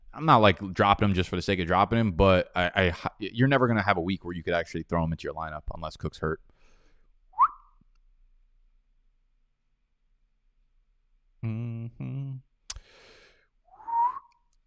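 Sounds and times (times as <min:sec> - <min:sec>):
speech: 0:00.2 - 0:06.5
person whistling: 0:07.4 - 0:07.8, 0:13.7 - 0:14.4.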